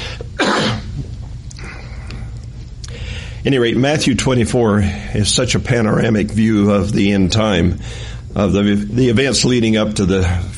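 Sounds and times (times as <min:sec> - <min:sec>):
person coughing after drinking water: 0:00.4 - 0:01.0
speech: 0:03.4 - 0:10.5.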